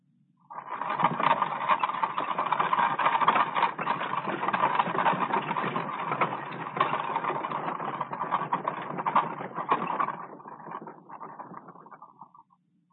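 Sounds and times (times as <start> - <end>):
wooden wagon wheels creaking and rattling: 0.5 - 12.4.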